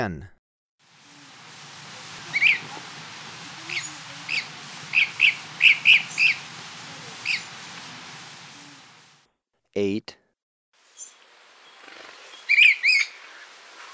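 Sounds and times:
speech: 0.0 - 0.4, 9.8 - 10.2
dusky-capped flycatcher whistled calls in Ecuador: 1.0 - 9.0, 11.0 - 13.9.

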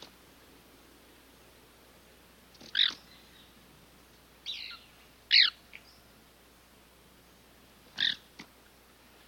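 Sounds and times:
White-collared Manakin calling in South America: 2.6 - 3.6, 4.4 - 5.9, 7.9 - 8.3.

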